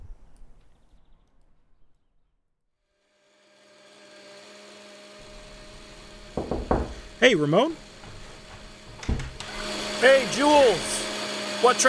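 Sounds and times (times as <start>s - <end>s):
blender whirring: 3.0s - 11.8s
speech: 7.2s - 7.8s, 10.0s - 11.8s.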